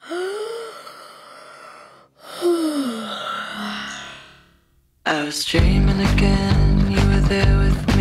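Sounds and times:
big drawn-out yawn with an echoey processed effect: 0.0 - 4.4
speech: 5.2 - 7.9.

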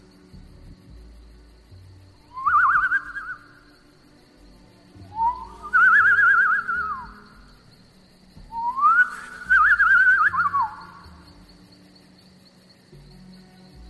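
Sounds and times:
person whistling through pursed lips imitating a birdcall to draw prey while hunting: 2.3 - 3.6, 5.1 - 7.5, 8.5 - 11.0.

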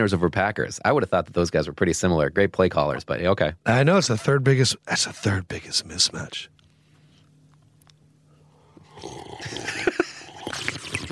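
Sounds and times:
speech: 0.0 - 6.6, 9.0 - 11.1
person gulping water: 8.8 - 11.1.

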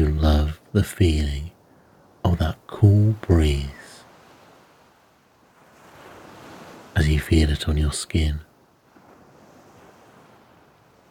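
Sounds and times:
ocean waves gently washing onto a sandy beach: 0.0 - 11.0
speech: 0.7 - 1.5, 2.3 - 3.8, 7.0 - 8.5.

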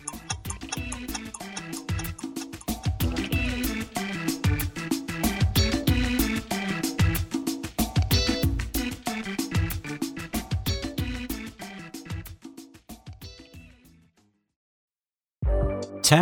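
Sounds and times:
music: 0.2 - 13.4, 15.5 - 16.2
chess clock ticking: 16.1 - 16.2.

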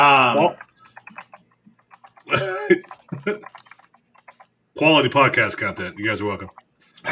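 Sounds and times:
speech: 0.0 - 0.7, 2.3 - 3.6, 4.8 - 7.1
man typing a chat message on a computer keyboard: 0.0 - 7.1.

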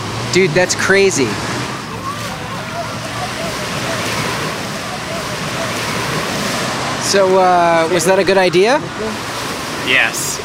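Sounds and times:
Atlantic Ocean surf roaring: 0.0 - 10.4
faint voices murmuring: 0.0 - 10.4
speech: 0.4 - 1.5, 7.1 - 10.4.

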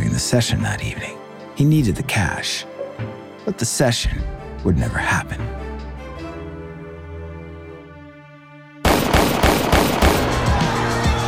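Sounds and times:
speech: 0.2 - 5.7
gunshots from a pair of 9mm pistols in a recording studio hallway: 8.8 - 10.8.

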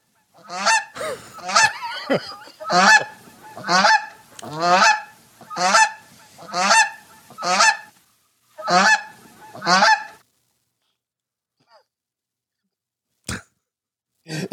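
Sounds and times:
goose honking with harsh nasal calls: 0.0 - 8.0, 8.6 - 10.2
laughter: 1.0 - 3.2
speech: 2.1 - 3.1, 3.7 - 4.0.

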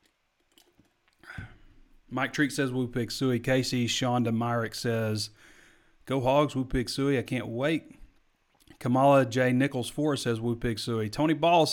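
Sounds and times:
speech: 2.1 - 5.5, 6.1 - 8.0, 8.8 - 11.7
soft wet mouth clicks: 8.5 - 8.8.

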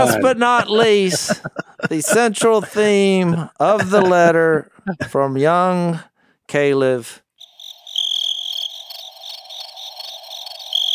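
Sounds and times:
laughter: 0.0 - 5.2
speech: 0.0 - 7.2
cricket chirping: 7.4 - 10.9
faint insect-like buzz: 7.4 - 10.9.

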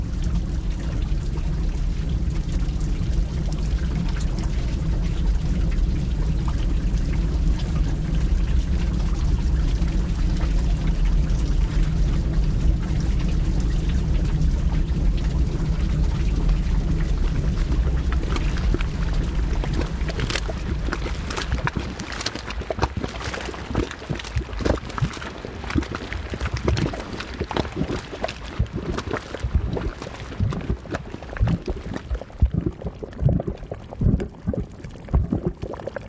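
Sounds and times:
volcanic mud pots bubbling in Rincón de la Vieja National Park Costa Rica: 0.0 - 36.0.

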